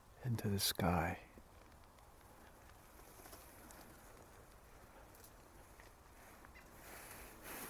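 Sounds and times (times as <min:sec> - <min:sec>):
steady outdoor noise: 0:00.0 - 0:07.6
speech: 0:00.2 - 0:01.3
faint calls from birds disturbed by a person walking past: 0:02.2 - 0:07.6.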